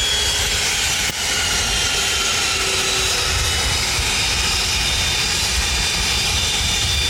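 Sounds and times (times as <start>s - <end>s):
arriving aircraft engines roaring as they shut down: 0.0s - 7.0s.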